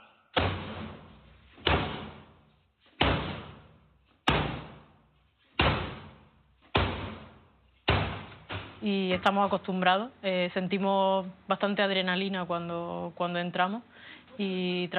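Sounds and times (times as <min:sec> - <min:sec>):
heavy booming blows of police forcing open an apartment door: 0:00.4 - 0:02.4, 0:05.6 - 0:08.8
speech: 0:08.8 - 0:14.9.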